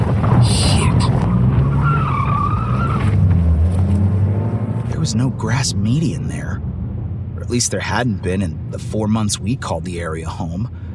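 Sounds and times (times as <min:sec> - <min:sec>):
car tires spinning and skidding on a grass median: 0:00.0 - 0:05.0
car engine rumble: 0:00.0 - 0:10.9
speech: 0:05.4 - 0:06.8, 0:07.5 - 0:10.8.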